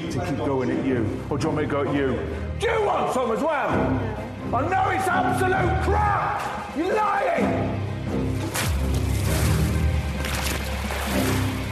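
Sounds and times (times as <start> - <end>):
speech: 0.1 - 8.7
thrown water splashing: 8.3 - 11.7.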